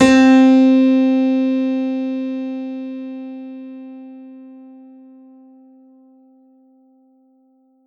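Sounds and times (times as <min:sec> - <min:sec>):
synthesizer concert grand piano C4 note: 0:00.0 - 0:05.0.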